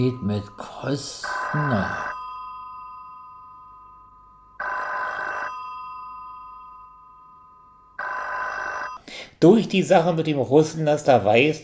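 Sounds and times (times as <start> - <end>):
speech: 0.0 - 2.1, 9.4 - 11.6
faint steady tone: 0.0 - 9.0
old-style telephone bell ringing: 0.0 - 9.0.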